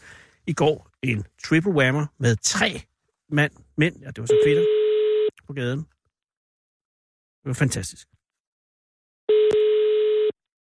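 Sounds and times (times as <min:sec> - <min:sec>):
speech: 0:00.5 - 0:04.8, 0:05.5 - 0:06.0, 0:07.4 - 0:08.2
telephone ringing tone on an outgoing call: 0:04.3 - 0:05.3, 0:09.3 - 0:10.4.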